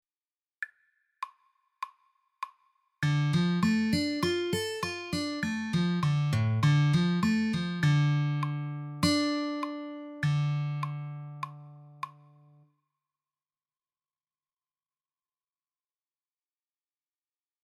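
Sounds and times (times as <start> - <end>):
C minor arpeggio: 3.1 - 12.0.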